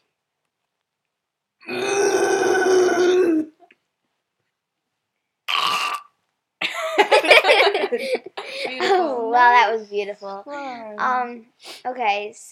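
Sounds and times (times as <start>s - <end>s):
person giving a rough grunt: 1.6s - 3.5s
person imitating a bear growl: 1.6s - 3.5s
laughter: 6.6s - 9.0s
speech: 9.4s - 12.5s.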